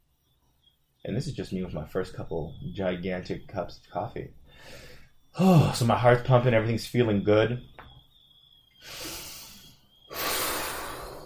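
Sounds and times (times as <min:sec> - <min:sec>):
speech: 0:01.0 - 0:07.7, 0:08.8 - 0:09.1
deep breath in and out: 0:04.4 - 0:05.8, 0:08.8 - 0:11.2.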